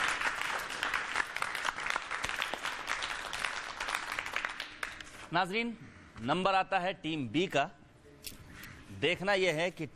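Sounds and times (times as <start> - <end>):
audience applause: 0.0 - 5.0
speech: 5.3 - 7.8, 8.9 - 9.9.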